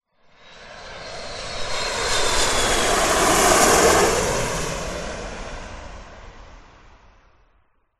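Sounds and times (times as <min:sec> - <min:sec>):
jet flying over: 0:00.2 - 0:07.5.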